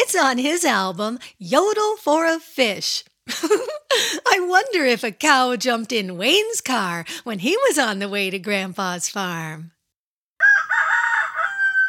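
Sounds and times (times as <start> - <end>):
speech: 0.0 - 9.8
rooster crowing: 10.4 - 11.8.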